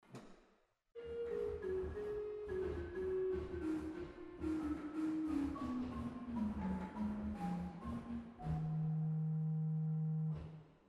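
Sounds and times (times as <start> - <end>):
Rohrflöte bass 4 organ stop in Waltershausen: 1.2 - 10.4.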